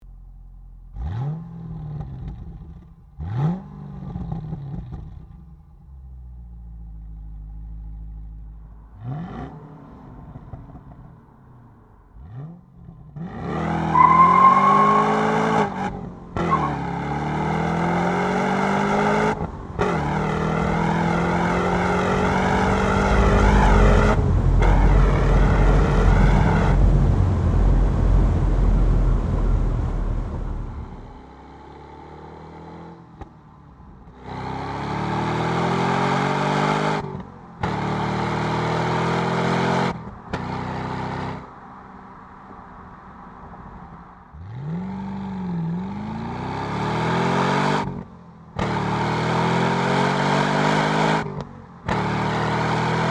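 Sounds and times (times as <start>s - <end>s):
exhaust: 0.0s - 53.0s.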